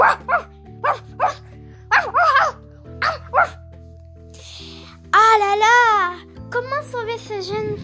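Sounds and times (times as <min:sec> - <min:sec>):
dog barking sharply: 0:00.0 - 0:03.6
steady sustained musical backdrop: 0:00.0 - 0:07.8.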